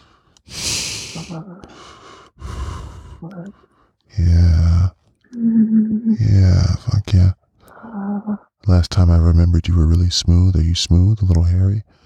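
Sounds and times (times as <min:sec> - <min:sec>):
heavy breathing through the nose: 0:00.0 - 0:04.1, 0:11.9 - 0:12.0
speech: 0:01.2 - 0:02.0, 0:03.2 - 0:04.7, 0:05.3 - 0:07.4, 0:08.7 - 0:12.0.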